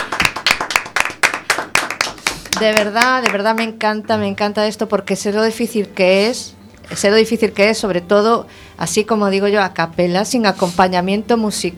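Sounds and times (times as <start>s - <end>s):
hands clapping in a quick steady rhythm: 0.0s - 4.2s
speech: 2.6s - 11.7s.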